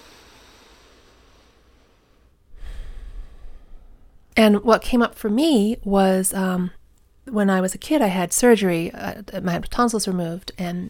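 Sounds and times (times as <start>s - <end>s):
deep breath: 0.0s - 4.3s
speech: 4.4s - 10.8s.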